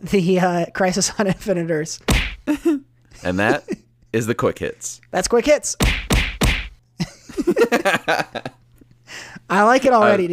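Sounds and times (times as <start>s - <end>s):
speech: 0.0s - 6.0s, 7.4s - 8.6s, 9.5s - 10.3s
heavy punch sound effects: 2.1s - 2.5s, 5.8s - 6.8s
laughter: 7.0s - 8.6s.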